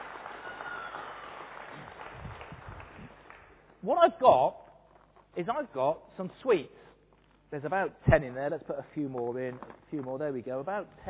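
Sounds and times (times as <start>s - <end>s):
audience applauding volunteers at a live demonstration: 0.0s - 3.6s
speech: 3.8s - 4.6s, 5.4s - 6.8s, 7.5s - 11.0s.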